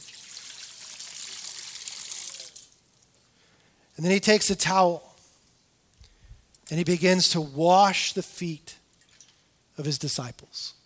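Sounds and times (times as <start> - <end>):
water pouring from a pitcher into a basin: 0.0 - 2.8
speech: 4.0 - 5.1, 6.7 - 8.8, 9.8 - 10.8.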